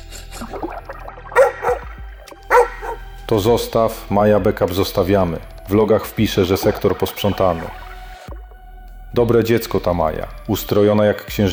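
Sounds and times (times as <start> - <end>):
dog barking: 1.4 - 1.9, 2.5 - 3.0
speech: 3.3 - 7.8, 9.2 - 11.5.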